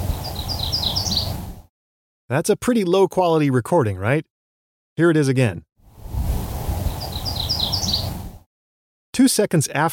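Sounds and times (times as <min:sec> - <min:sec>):
MacGillivray's warbler singing high slurred chirps: 0:00.1 - 0:01.4, 0:06.8 - 0:08.2
speech: 0:02.3 - 0:04.3, 0:05.0 - 0:05.7, 0:09.2 - 0:09.8.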